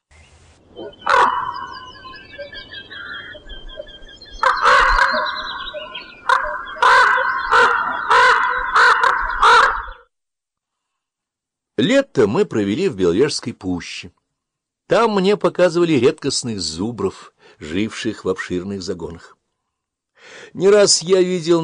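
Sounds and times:
raven croaking: 0:00.7 - 0:10.0
speech: 0:00.8 - 0:01.7, 0:11.8 - 0:14.2, 0:14.9 - 0:19.4, 0:20.2 - 0:21.6.

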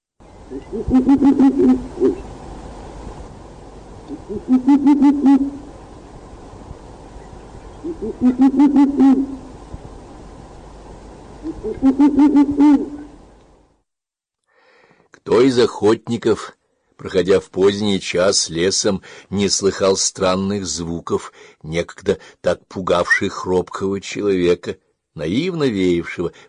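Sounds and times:
owls hooting: 0:00.5 - 0:02.3, 0:04.1 - 0:05.7, 0:07.8 - 0:09.5, 0:11.4 - 0:13.2
speech: 0:00.5 - 0:02.3, 0:04.1 - 0:05.6, 0:07.9 - 0:09.4, 0:11.6 - 0:13.0, 0:15.4 - 0:26.4.

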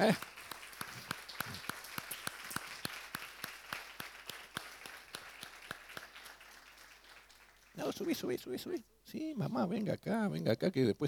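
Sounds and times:
speech: 0:00.0 - 0:00.3, 0:08.0 - 0:11.0
audience applause at a child's presentation ceremony: 0:00.0 - 0:08.3.

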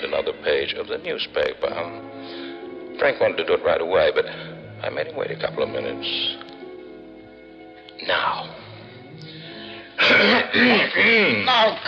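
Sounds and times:
speech: 0:00.1 - 0:06.5, 0:08.0 - 0:08.6, 0:10.0 - 0:11.8
throat clearing: 0:10.0 - 0:11.5.

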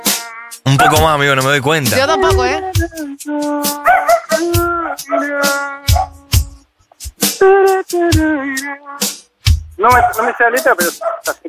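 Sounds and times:
person singing: 0:00.0 - 0:06.6, 0:07.2 - 0:09.2
dog howling along with singing: 0:00.1 - 0:01.1, 0:03.7 - 0:06.5, 0:10.0 - 0:11.3
speech: 0:00.7 - 0:06.1, 0:07.4 - 0:09.2, 0:09.8 - 0:11.4.

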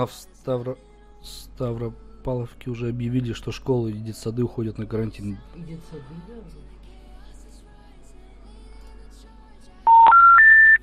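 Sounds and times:
speech: 0:00.0 - 0:06.8
telephone keypad dialing tones: 0:09.9 - 0:10.8.

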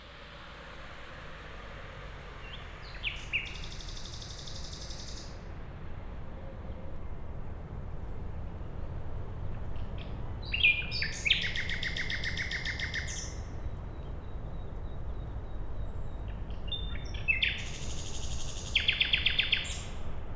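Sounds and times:
common nightingale singing at night beside a road: 0:02.4 - 0:05.4, 0:07.8 - 0:20.3.

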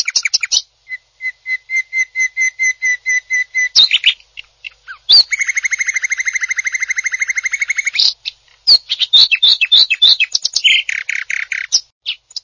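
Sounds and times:
greater green leafbird song with rapid trill, sharp chirps, whistles and buzzy notes: 0:00.0 - 0:12.4.

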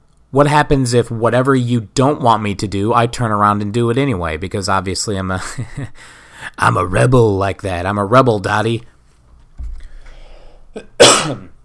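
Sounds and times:
speech: 0:00.3 - 0:08.9, 0:10.8 - 0:11.5
sharp inhale: 0:06.0 - 0:06.4, 0:09.8 - 0:10.8
harsh cough: 0:10.8 - 0:11.6.

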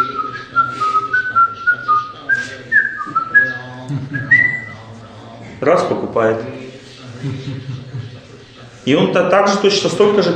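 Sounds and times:
man whistling a tune on the streets: 0:00.0 - 0:03.6, 0:04.2 - 0:04.8
laughter: 0:00.0 - 0:04.9, 0:06.8 - 0:08.9
speech: 0:05.6 - 0:08.0, 0:08.8 - 0:10.3.

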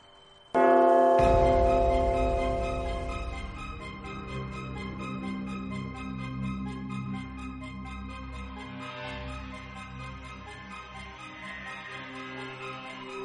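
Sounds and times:
bell ringing across mountain peaks on an academy island: 0:00.0 - 0:05.1.

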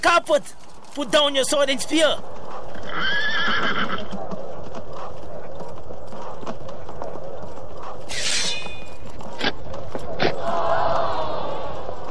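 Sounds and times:
speech: 0:00.0 - 0:02.3
horse hooves clopping onto a golden carpet: 0:00.0 - 0:12.0
horse whinnying: 0:02.8 - 0:04.2.

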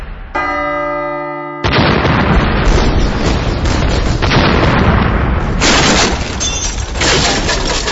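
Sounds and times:
ringing bell-like tone: 0:00.4 - 0:01.7
explosion blasting a hole in a museum wall: 0:01.6 - 0:07.8.

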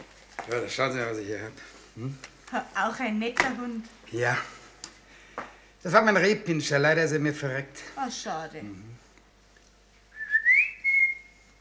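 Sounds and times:
speech: 0:00.5 - 0:04.6, 0:05.4 - 0:09.0
person whistling to call a miniature pinscher dog: 0:10.1 - 0:11.6.

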